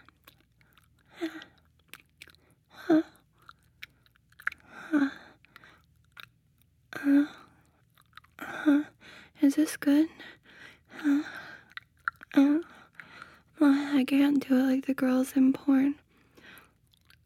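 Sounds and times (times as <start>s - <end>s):
mouth chewing a taste of food: 0.0s - 6.8s, 7.5s - 8.4s, 11.3s - 13.4s, 16.3s - 17.2s
speech: 9.5s - 10.4s, 14.0s - 16.0s.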